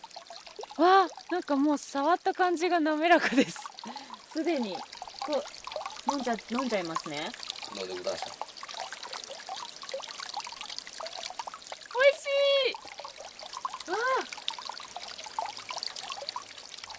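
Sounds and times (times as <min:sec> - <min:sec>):
flowing river water rushing and trickling: 0:00.0 - 0:16.9
speech: 0:00.8 - 0:08.4
woman exclaiming: 0:12.0 - 0:12.8, 0:13.9 - 0:14.3.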